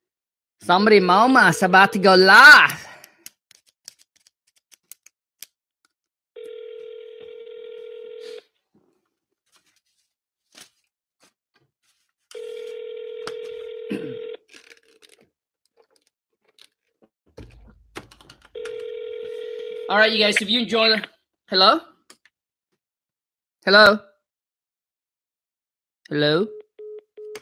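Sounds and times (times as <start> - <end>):
speech: 0.6 - 2.8, 19.9 - 21.9, 23.6 - 24.1, 26.1 - 26.6
phone call dialing tones: 6.4 - 8.4, 12.3 - 14.4, 18.6 - 20.6, 26.5 - 27.4.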